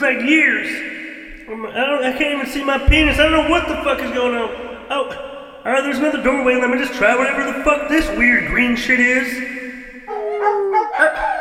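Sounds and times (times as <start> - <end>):
speech: 0.1 - 0.9, 1.5 - 9.6
puppies barking, howling, yipping and whimpering: 10.1 - 11.4.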